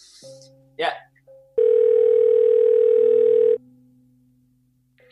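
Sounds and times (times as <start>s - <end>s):
speech: 0.2s - 1.1s
telephone ringback tone electronic beep: 1.6s - 3.6s.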